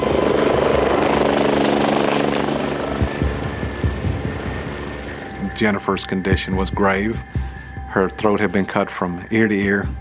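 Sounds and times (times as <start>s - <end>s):
helicopter rotor and engine drone: 0.0s - 10.0s
low thumps: 2.4s - 8.0s
speech: 5.6s - 10.0s.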